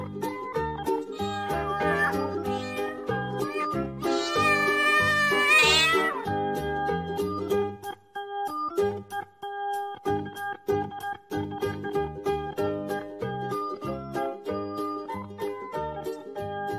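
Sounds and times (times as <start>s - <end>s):
bouncy steady musical accompaniment: 0.0s - 16.7s
cat meowing: 1.2s - 6.3s.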